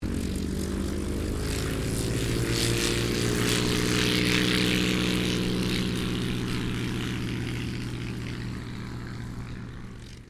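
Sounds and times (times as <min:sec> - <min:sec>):
1939 Ryan STM-S2 aircraft taking off: 0:00.0 - 0:10.2.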